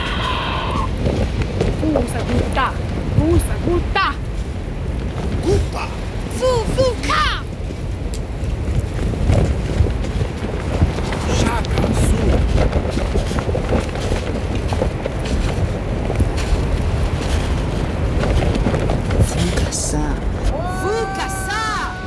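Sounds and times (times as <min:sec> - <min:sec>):
faint voice-like calls: 0:00.0 - 0:01.0
strong wind sweeping a high rocky plateau: 0:00.0 - 0:22.0
speech: 0:02.0 - 0:04.2.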